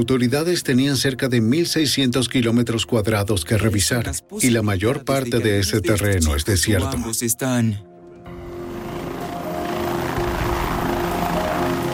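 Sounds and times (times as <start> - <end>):
speech: 0.0 - 7.9
helicopter rotor thrum and engine drone: 8.3 - 11.9.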